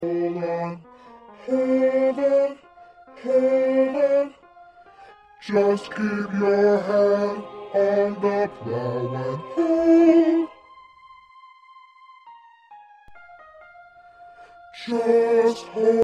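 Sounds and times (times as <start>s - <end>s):
first bass choir part singing: 1.4s - 4.4s, 5.4s - 10.5s, 14.8s - 16.0s.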